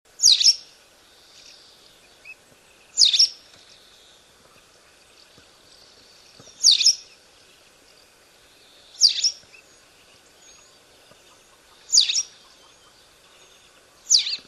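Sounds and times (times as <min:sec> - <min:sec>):
waxwing bird sounds: 0:00.1 - 0:14.4.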